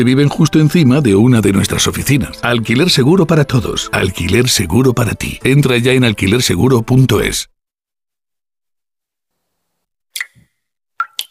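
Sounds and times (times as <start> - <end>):
speech: 0.0 - 7.5
shower water dripping: 10.1 - 11.3.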